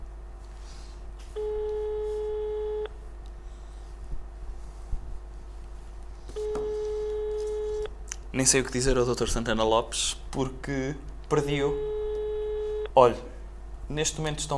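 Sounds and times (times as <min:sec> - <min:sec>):
low constant hum: 0:00.0 - 0:14.5
telephone call tones on a phone line being dialled: 0:01.4 - 0:02.9, 0:06.3 - 0:07.9, 0:11.6 - 0:12.9
speech: 0:08.4 - 0:11.9, 0:13.0 - 0:13.3, 0:13.9 - 0:14.5.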